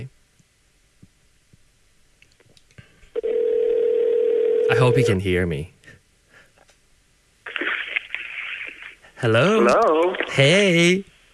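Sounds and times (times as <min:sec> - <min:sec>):
telephone dial tone: 0:03.2 - 0:05.0
speech: 0:04.8 - 0:05.8, 0:09.2 - 0:11.1.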